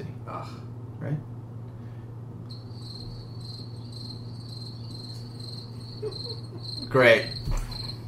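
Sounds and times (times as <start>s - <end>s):
speech: 0.0s - 1.4s, 6.0s - 7.6s
faint low hum: 0.0s - 8.0s
crickets chirping: 2.4s - 8.0s.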